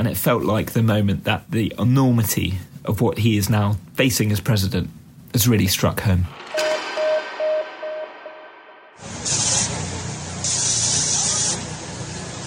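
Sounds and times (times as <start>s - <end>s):
speech: 0.0s - 6.4s
short beeps: 6.4s - 9.0s.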